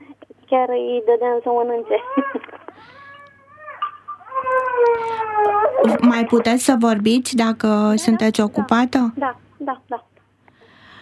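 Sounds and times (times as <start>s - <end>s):
speech: 0.5s - 2.6s, 5.8s - 10.1s
small child crying: 1.9s - 6.1s.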